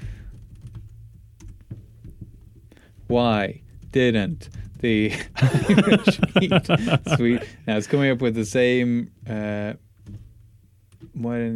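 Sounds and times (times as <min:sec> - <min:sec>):
rapid typing on a computer keyboard: 0:00.2 - 0:01.6
speech: 0:03.1 - 0:09.9, 0:11.2 - 0:11.5
laughter: 0:05.1 - 0:08.2.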